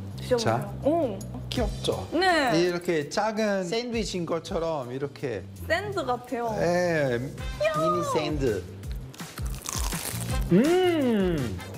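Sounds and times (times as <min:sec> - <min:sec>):
speech: 0:00.3 - 0:08.8, 0:10.5 - 0:11.7
crisp crunching bites of a seaweed-wrapped rice cake: 0:08.9 - 0:10.6
drawn-out voiced hum of appreciation: 0:10.4 - 0:11.7.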